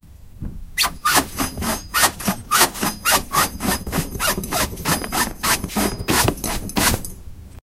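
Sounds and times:
workers scrubbing cloth: 0.8s - 7.0s.

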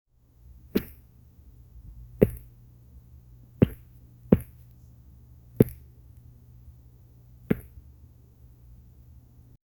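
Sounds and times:
soft pat: 2.2s - 2.5s, 3.6s - 4.8s, 7.5s - 7.8s.

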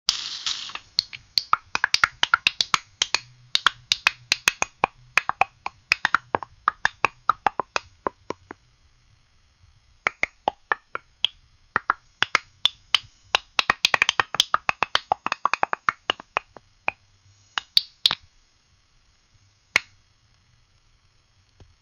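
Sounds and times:
popcorn popping while cooking: 0.1s - 8.6s, 10.0s - 17.0s, 17.6s - 18.2s, 19.8s - 20.0s.

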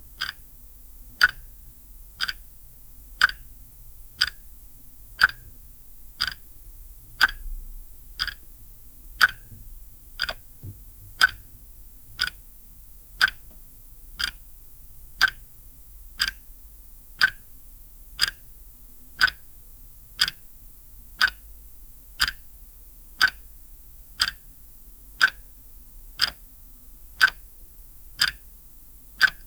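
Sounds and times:
light ticking of a clock: 0.2s - 0.4s, 1.1s - 1.5s, 2.2s - 2.4s, 3.2s - 4.4s, 5.2s - 5.6s, 6.2s - 6.5s, 7.1s - 7.6s, 8.2s - 8.6s, 9.2s - 12.5s, 13.2s - 13.6s, 14.2s - 14.6s, 15.2s - 15.6s, 16.2s - 16.5s, 17.2s - 17.5s, 18.2s - 18.5s, 19.2s - 19.5s, 20.2s - 20.5s, 21.2s - 21.5s, 22.2s - 22.5s, 23.2s - 23.4s, 24.2s - 24.6s, 25.2s - 25.5s, 26.2s - 26.5s, 27.1s - 27.5s, 28.2s - 29.4s.

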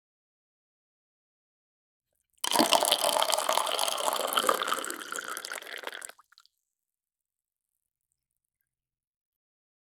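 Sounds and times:
whiskey pouring: 2.4s - 6.4s.

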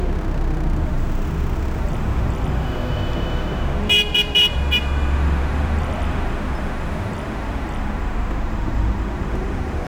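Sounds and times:
busy city street ambience: 0.0s - 9.9s
car horns: 2.3s - 5.2s.

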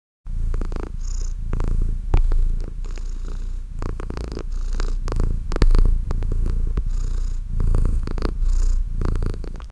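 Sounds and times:
cat purring calmly: 0.3s - 9.7s.

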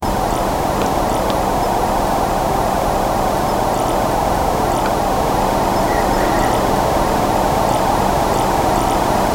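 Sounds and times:
British night time forest ambience: 0.0s - 9.3s.

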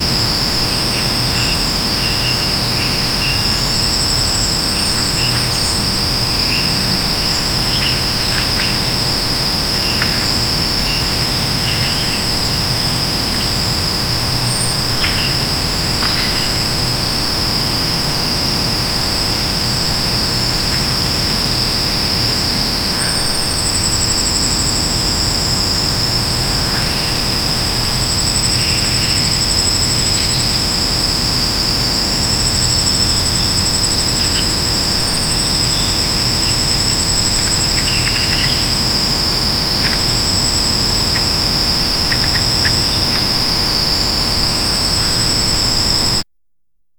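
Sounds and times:
autumn forest ambience: 0.0s - 46.2s.

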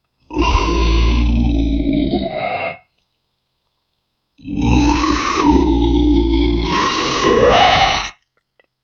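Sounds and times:
vampire monster grunting: 0.3s - 2.9s, 4.4s - 8.2s.

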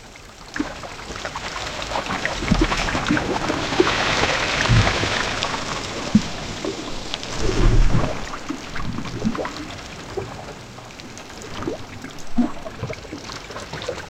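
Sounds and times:
massive heavy splash: 1.8s - 13.0s.

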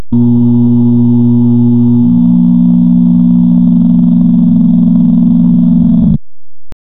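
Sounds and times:
low-pitched failure buzzer: 0.0s - 6.2s.

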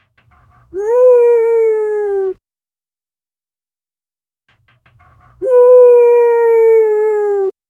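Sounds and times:
dog making meow-like sounds: 0.7s - 2.4s, 5.4s - 7.5s.

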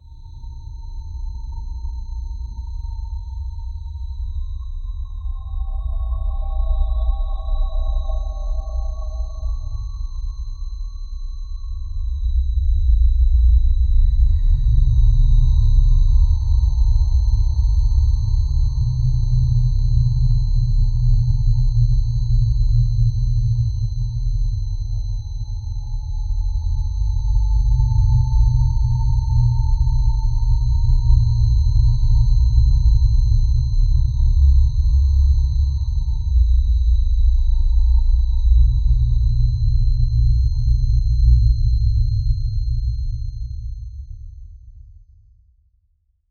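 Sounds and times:
slow eerie dark ambient music: 0.2s - 43.8s.

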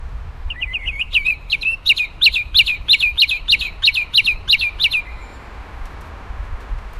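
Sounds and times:
bird singing: 0.5s - 5.5s.

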